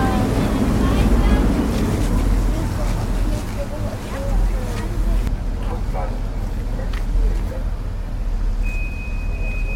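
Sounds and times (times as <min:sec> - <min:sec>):
water noise: 0:00.0 - 0:06.7
ferry engine rumble on the Elbe river: 0:00.0 - 0:09.7.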